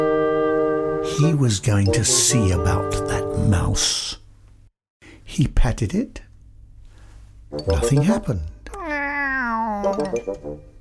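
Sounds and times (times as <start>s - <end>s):
speech: 1.0s - 4.2s, 5.3s - 6.3s, 7.5s - 8.5s, 9.8s - 10.7s
person imitating a cat's meow: 8.7s - 10.2s.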